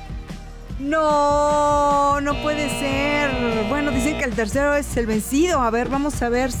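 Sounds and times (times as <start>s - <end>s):
speech: 0.9s - 1.4s, 2.3s - 6.5s
telephone ring tone of a call being placed: 2.3s - 4.3s.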